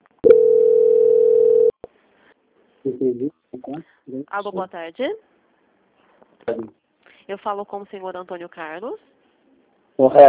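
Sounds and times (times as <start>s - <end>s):
telephone call transfer tone on a phone line: 0.2s - 1.8s
speech: 2.8s - 5.4s, 6.4s - 9.1s, 10.0s - 10.2s.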